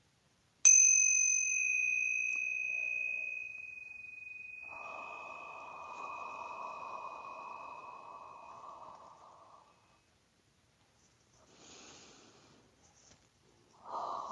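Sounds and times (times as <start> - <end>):
soft hiss: 0.0 - 14.2
small tincture hand bells struck before a trance channeling session: 0.7 - 8.9.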